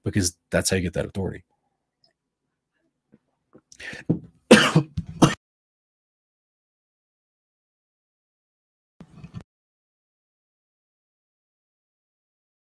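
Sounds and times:
speech: 0:00.0 - 0:01.5, 0:03.8 - 0:04.2
person coughing: 0:04.5 - 0:05.4
throat clearing: 0:04.5 - 0:05.4.

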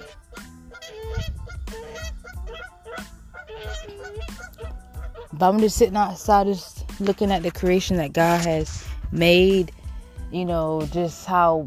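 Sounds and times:
geese honking outdoors: 0:00.0 - 0:08.6
speech: 0:05.4 - 0:11.6.

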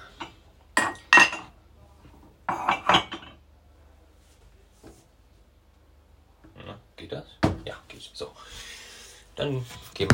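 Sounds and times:
ceramic cups clinking as they are put away in a cupboard: 0:00.1 - 0:01.6, 0:02.5 - 0:03.4
speech: 0:07.1 - 0:07.4, 0:09.4 - 0:10.1.

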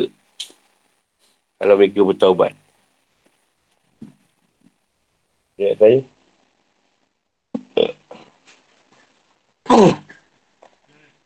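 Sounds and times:
speech: 0:01.6 - 0:02.6, 0:05.6 - 0:06.2
person clearing throat: 0:07.6 - 0:08.4, 0:09.6 - 0:10.3
person coughing: 0:09.7 - 0:10.3.

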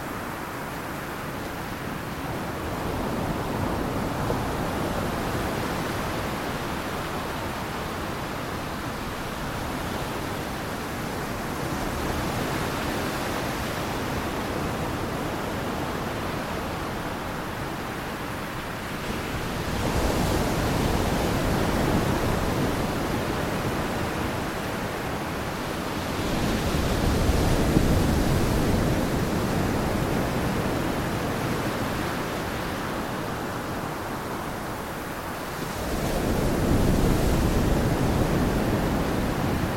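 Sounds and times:
ocean waves washing and breaking: 0:00.0 - 0:39.7.

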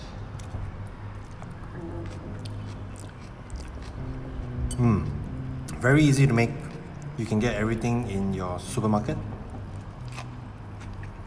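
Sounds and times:
low hum: 0:00.0 - 0:11.2
crunching and chewing of crisp fresh vegetables during a vegetarian lunch: 0:00.2 - 0:07.5, 0:09.5 - 0:11.2
speech: 0:05.8 - 0:06.6, 0:07.2 - 0:09.3.

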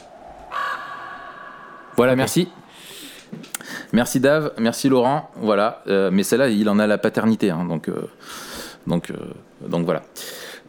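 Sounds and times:
harsh crow caw: 0:00.4 - 0:02.0
speech: 0:02.0 - 0:10.3.

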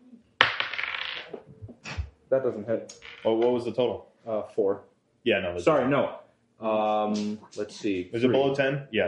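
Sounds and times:
dice clattering onto a table rolled for an attack in a game: 0:00.4 - 0:01.5
speech: 0:02.3 - 0:09.0.

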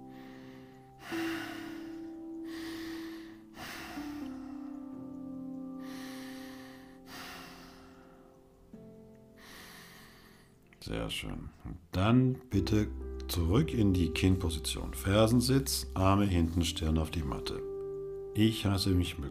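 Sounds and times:
deep slow breathing during a yoga session: 0:00.0 - 0:08.6, 0:09.4 - 0:10.6
speech: 0:10.8 - 0:17.7, 0:18.4 - 0:19.2.

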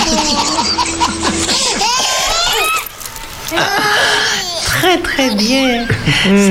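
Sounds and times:
baby laughing: 0:00.0 - 0:06.0
speech: 0:04.9 - 0:06.5.

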